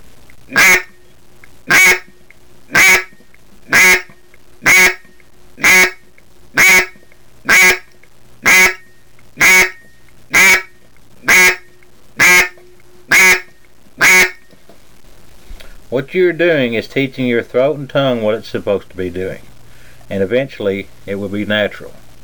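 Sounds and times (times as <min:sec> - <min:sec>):
speech: 0:00.5 - 0:00.8, 0:16.1 - 0:19.5, 0:20.1 - 0:22.0
duck quacks blown on a duck call: 0:00.5 - 0:01.0, 0:01.7 - 0:02.1, 0:02.7 - 0:14.4.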